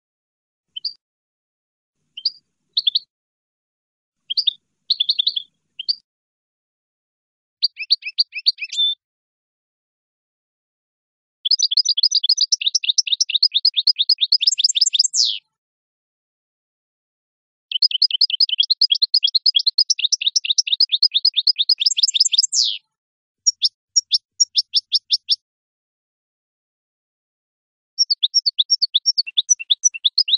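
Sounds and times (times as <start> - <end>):
European goldfinch song: 0.7 - 1.0, 2.2 - 3.1, 4.3 - 6.0, 7.6 - 9.0, 11.5 - 15.4, 17.7 - 22.8, 23.4 - 25.4, 28.0 - 30.3.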